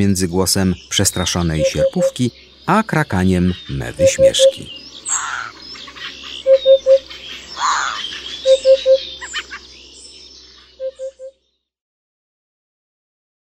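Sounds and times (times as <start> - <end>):
speech: 0.0 - 4.8
high twittering from other birds: 0.0 - 11.5
Eurasian hoopoe soft low hooted triplets: 1.6 - 2.2, 3.9 - 5.5, 6.4 - 9.6.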